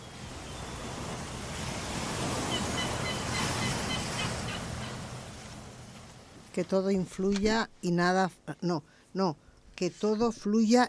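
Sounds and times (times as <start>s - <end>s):
sea waves washing over surf: 0.0s - 10.8s
speech: 6.6s - 10.8s.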